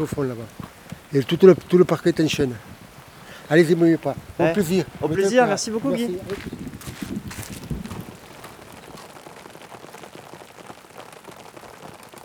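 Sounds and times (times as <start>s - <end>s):
speech: 0.0s - 2.7s, 3.5s - 6.6s
rain falling steadily outdoors: 0.0s - 12.2s
shuffling movement: 4.2s - 9.1s.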